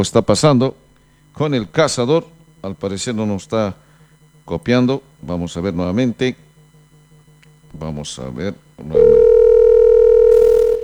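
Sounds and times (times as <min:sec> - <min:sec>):
speech: 0:00.0 - 0:00.8, 0:01.4 - 0:03.9, 0:04.5 - 0:06.4, 0:07.7 - 0:09.4
telephone dial tone of a call connecting: 0:08.9 - 0:10.8.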